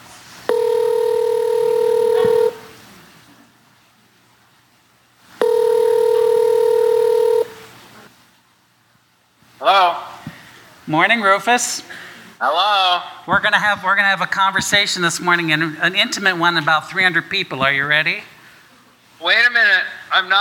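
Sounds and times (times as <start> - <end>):
person answering telephone: 0.5 - 2.7, 5.4 - 7.6
telephone ringing over the line: 0.5 - 2.7, 5.4 - 7.6
speech: 10.9 - 18.3, 19.2 - 20.3.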